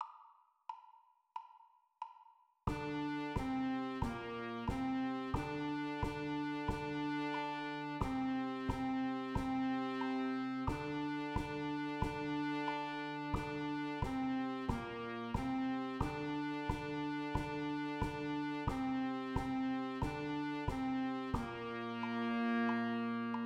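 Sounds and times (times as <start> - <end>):
horn music: 2.7 - 23.4.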